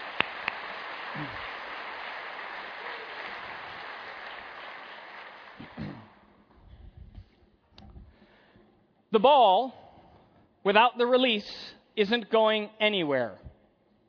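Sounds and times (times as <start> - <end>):
audience applause: 0.0 - 6.2
speech: 1.2 - 1.5, 9.1 - 9.8, 10.6 - 13.4.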